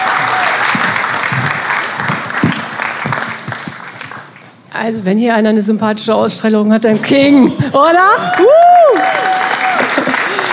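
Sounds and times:
audience applause: 0:00.0 - 0:04.5, 0:08.2 - 0:10.5
speech: 0:04.8 - 0:09.4.

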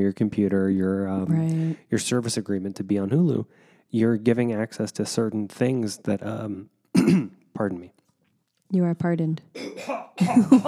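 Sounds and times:
speech: 0:00.0 - 0:08.0, 0:08.7 - 0:10.6
loud coughing: 0:07.0 - 0:07.4, 0:09.6 - 0:10.6.

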